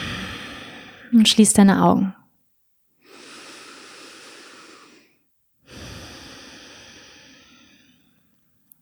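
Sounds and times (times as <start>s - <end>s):
deep breathing during seated meditation: 0.0s - 1.2s, 3.0s - 8.4s
speech: 1.1s - 2.2s.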